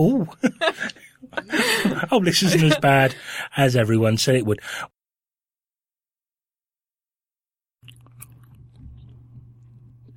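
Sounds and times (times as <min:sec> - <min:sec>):
speech: 0:00.0 - 0:05.0
laughter: 0:00.2 - 0:03.3
loud wet crunchy chewing of food: 0:07.8 - 0:10.1.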